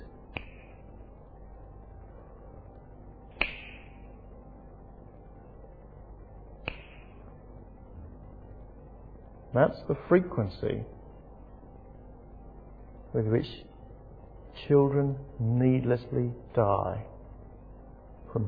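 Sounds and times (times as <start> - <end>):
finger snaps: 0.0 - 1.0, 3.3 - 4.1, 6.6 - 7.3
low steady hum: 0.0 - 18.4
speech: 9.6 - 11.0, 13.2 - 13.7, 14.7 - 17.1.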